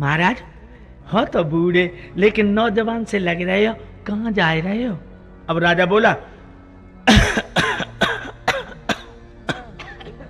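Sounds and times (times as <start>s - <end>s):
speech: 0.0s - 0.5s, 1.1s - 6.3s
person coughing: 7.1s - 10.2s.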